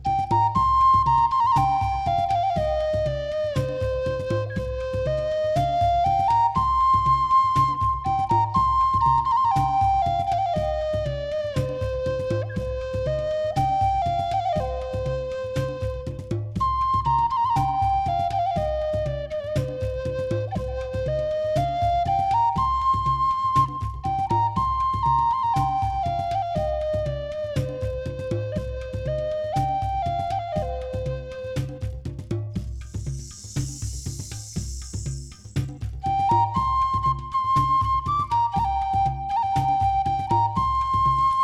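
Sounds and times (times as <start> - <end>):
flute tuned to 432 Hz: 0.1 - 32.1, 32.8 - 41.4.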